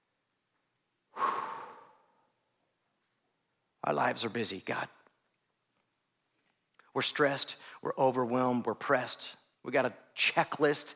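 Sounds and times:
deep breath: 0:01.1 - 0:02.4, 0:07.6 - 0:07.8
speech: 0:03.9 - 0:05.0, 0:07.0 - 0:10.9.

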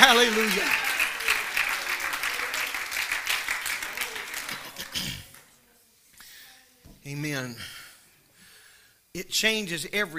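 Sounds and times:
audience clapping hands: 0:00.0 - 0:05.5
speech: 0:00.2 - 0:00.8, 0:09.4 - 0:10.1.

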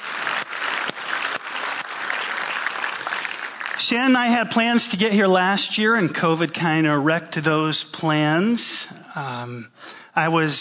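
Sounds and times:
large crowd applauding: 0:00.0 - 0:05.1
speech: 0:03.9 - 0:10.5.

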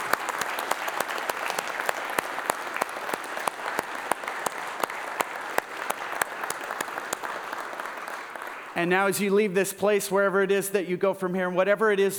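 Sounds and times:
audience applauding: 0:00.0 - 0:09.1
speech: 0:08.8 - 0:12.1.

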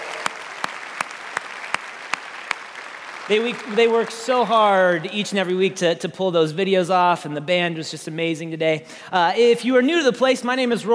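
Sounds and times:
single claps: 0:00.0 - 0:03.7
audience applause: 0:00.0 - 0:05.0
speech: 0:03.3 - 0:10.9.

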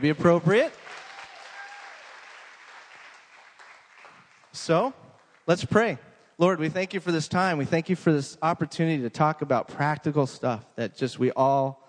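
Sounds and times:
speech: 0:00.0 - 0:00.8, 0:04.6 - 0:11.8
room full of people clapping: 0:00.0 - 0:05.5.

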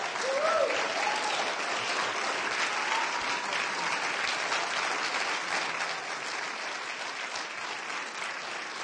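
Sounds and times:
sustained applause from a large crowd: 0:00.0 - 0:08.8.

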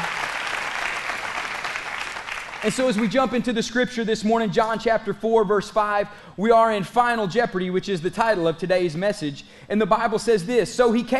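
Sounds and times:
church service audience clapping: 0:00.0 - 0:03.4
speech: 0:02.6 - 0:11.1.

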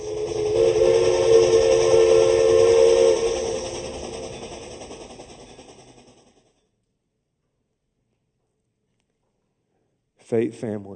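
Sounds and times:
steam train whistle blowing: 0:00.0 - 0:04.7
rumbling background: 0:00.0 - 0:06.4
speech: 0:10.3 - 0:10.9.

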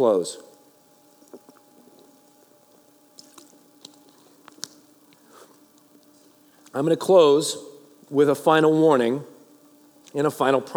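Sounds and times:
speech: 0:00.0 - 0:00.5, 0:06.8 - 0:09.3, 0:10.1 - 0:10.7
steady low room hum: 0:00.0 - 0:10.7
person sipping and swallowing water: 0:03.2 - 0:05.6.

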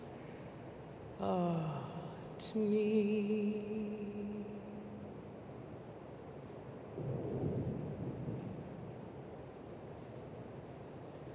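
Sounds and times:
faint sustained tone: 0:00.0 - 0:06.0
rainy wash during a worship service: 0:00.0 - 0:11.3
speech: 0:01.2 - 0:04.6
low rolling thunder from a thunderstorm: 0:07.0 - 0:09.3.

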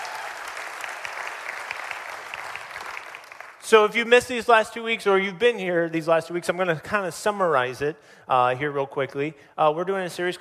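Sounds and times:
audience applause: 0:00.0 - 0:03.6
speech: 0:03.7 - 0:10.3.

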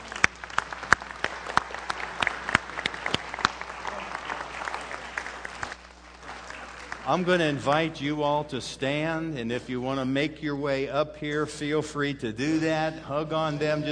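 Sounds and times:
audience applauding: 0:00.0 - 0:07.9
speech: 0:07.1 - 0:13.9.

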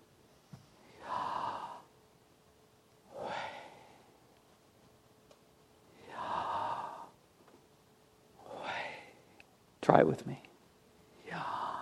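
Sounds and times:
single voice breathing slowly in and out, whispery: 0:00.8 - 0:01.9, 0:03.1 - 0:04.2, 0:05.9 - 0:07.2, 0:08.4 - 0:09.4, 0:11.2 - 0:11.8
speech: 0:09.8 - 0:10.5.

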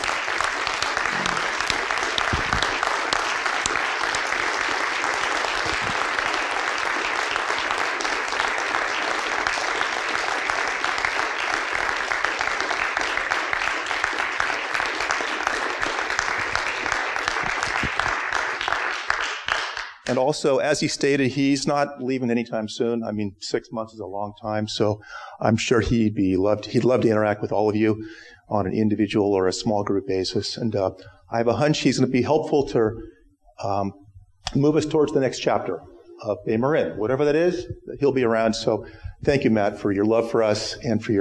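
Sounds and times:
large standing audience applauding: 0:00.0 - 0:20.2
speech: 0:20.2 - 0:41.1.

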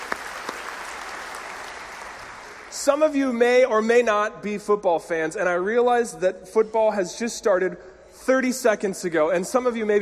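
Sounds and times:
crowd applauding: 0:00.0 - 0:02.8
speech: 0:02.8 - 0:10.0.

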